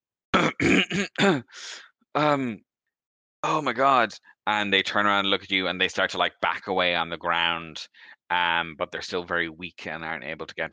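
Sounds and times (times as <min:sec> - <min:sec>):
person imitating a sick person coughing: 0:00.4 - 0:01.5
speech: 0:00.6 - 0:02.7, 0:03.4 - 0:10.7
raspy drawn-in breath imitating a sick person: 0:01.5 - 0:02.0, 0:07.9 - 0:08.2.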